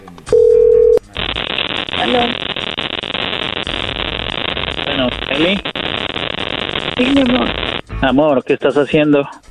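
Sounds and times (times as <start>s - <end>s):
telephone call ringing tone while dialing: 0.3s - 1.0s
hiss of open phone-line noise: 0.3s - 7.9s
speech: 2.0s - 2.4s, 5.4s - 5.7s, 7.0s - 9.4s.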